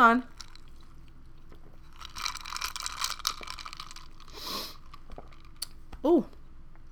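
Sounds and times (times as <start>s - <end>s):
speech: 0.0s - 0.3s, 6.0s - 6.4s
crinkly crunchy handling noises: 0.3s - 5.6s
person sipping a drink with a soft breathy slurp: 0.4s - 5.8s.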